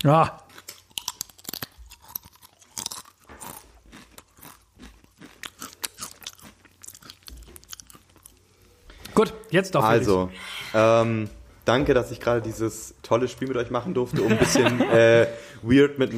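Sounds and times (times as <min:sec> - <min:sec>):
speech: 0:00.0 - 0:00.4, 0:09.2 - 0:16.1
crunchy chewing and biting while eating food: 0:00.0 - 0:09.2
laughter: 0:14.1 - 0:15.6.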